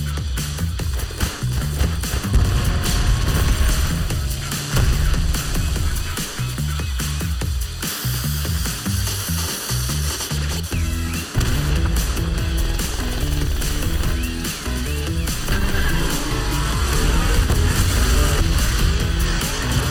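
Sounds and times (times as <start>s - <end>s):
video game explosions: 0.8s - 7.8s, 10.8s - 19.9s
crackling debris: 0.8s - 19.9s.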